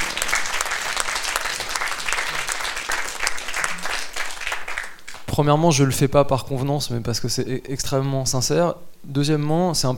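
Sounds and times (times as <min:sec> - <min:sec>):
audience applause: 0:00.0 - 0:05.2
speech: 0:05.4 - 0:09.9.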